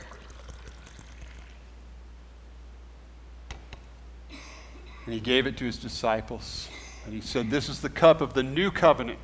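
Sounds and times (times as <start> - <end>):
liquid poured out of a cup during church communion: 0.0 - 1.7
speech: 5.1 - 9.2.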